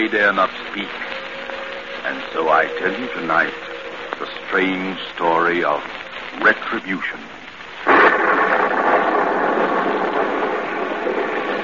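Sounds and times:
speech: 0.0s - 1.1s, 2.1s - 7.4s
heavy rain at night on a muddy road: 0.0s - 11.6s
thunder: 7.8s - 11.6s.

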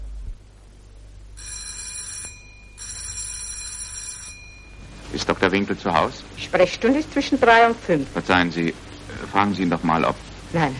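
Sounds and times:
low hum: 0.0s - 10.7s
electric doorbell at a doctor's home ringing: 1.4s - 5.0s
speech: 5.2s - 10.7s.

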